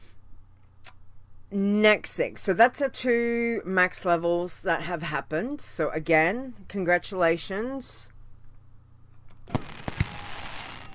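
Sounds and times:
speech: 1.5 - 8.1
fireworks bangs: 9.5 - 10.9.

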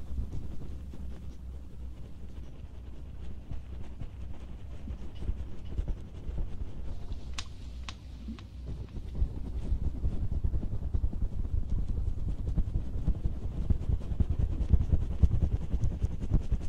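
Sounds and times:
rubbing and scratching at an ear during ear cleaning and massage: 0.0 - 16.6
sharp clicks: 7.1 - 9.0.

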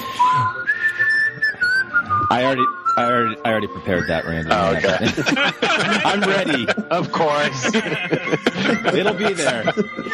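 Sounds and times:
group whistling a children's church song: 0.0 - 5.7, 8.4 - 10.1
speech: 2.3 - 10.1
laughter: 4.6 - 10.1.

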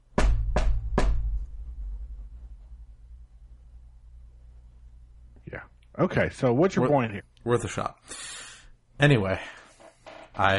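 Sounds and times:
firm knocks on a door with a dull wooden thud: 0.2 - 1.4
speech: 5.5 - 8.4, 9.0 - 9.6, 10.4 - 10.5.

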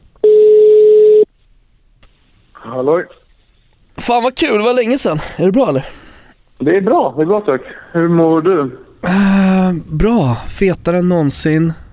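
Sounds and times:
ringback tone on a phone line while placing a call: 0.2 - 1.3
speech: 2.7 - 3.2, 4.0 - 6.0, 6.6 - 11.8.

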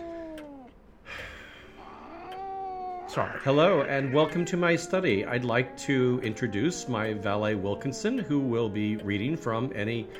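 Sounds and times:
cat meowing: 1.8 - 8.4
speech: 3.2 - 10.1.

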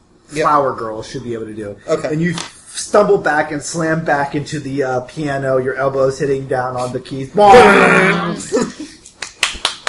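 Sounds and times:
speech: 0.3 - 8.8
hands clapping in excitement: 9.0 - 9.8.

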